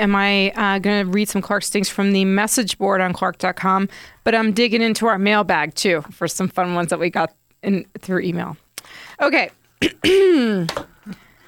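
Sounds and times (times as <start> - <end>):
speech: 0.0 - 11.2
woman clearing her throat: 9.8 - 10.7.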